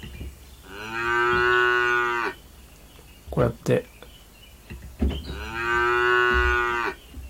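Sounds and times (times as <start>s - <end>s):
cow moos played to welcome arriving people: 0.7s - 2.4s, 5.3s - 7.0s
speech: 3.4s - 4.0s.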